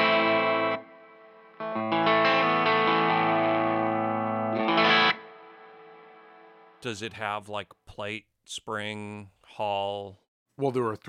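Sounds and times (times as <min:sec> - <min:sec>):
overdriven electric guitar chords through the reverb channel of a two-channel pedal: 0:00.0 - 0:06.8
speech: 0:06.8 - 0:11.0.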